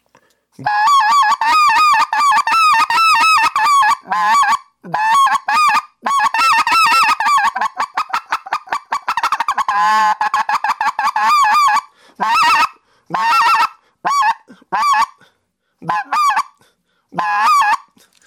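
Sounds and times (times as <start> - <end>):
goose spec call blown on a hand call: 0.6 - 15.2, 15.8 - 17.9.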